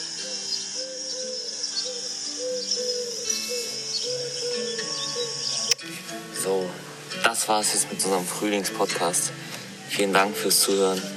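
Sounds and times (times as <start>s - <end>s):
high chirping of birds or insects: 0.0s - 5.8s
pigeons cooing in spring: 0.0s - 5.8s
speech: 7.4s - 11.1s.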